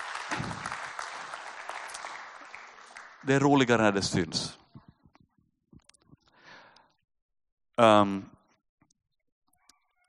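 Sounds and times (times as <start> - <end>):
audience at a Sunday gathering applauding: 0.0 - 4.0
speech: 3.2 - 4.6, 7.8 - 8.3.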